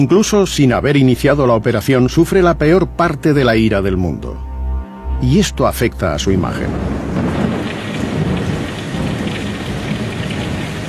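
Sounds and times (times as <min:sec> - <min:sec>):
speech: 0:00.0 - 0:04.5, 0:05.2 - 0:07.1
low rumble of thunder: 0:06.3 - 0:10.8
heavy downpour over Cape Canaveral: 0:06.4 - 0:10.8.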